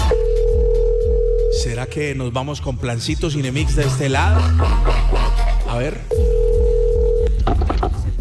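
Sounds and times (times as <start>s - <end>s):
telephone ringing tone while returning a call: 0.1s - 2.0s, 6.1s - 8.1s
speech: 1.9s - 6.3s.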